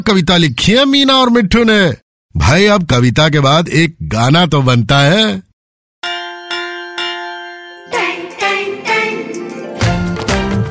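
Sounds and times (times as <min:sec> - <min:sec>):
speech: 0:00.0 - 0:05.5
school bell clanging: 0:06.0 - 0:10.1
lively music: 0:06.0 - 0:10.6.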